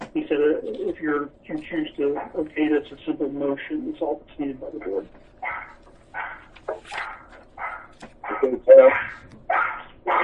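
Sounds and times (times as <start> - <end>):
speech: 0.2 - 7.1, 8.4 - 9.2
dog barking: 5.4 - 10.2.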